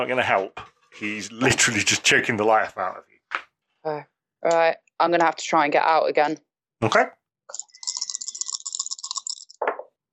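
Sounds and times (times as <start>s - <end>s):
speech: 0.0s - 3.1s, 3.8s - 7.7s
dice rolling and rattling during a tabletop role-playing game: 7.5s - 9.6s.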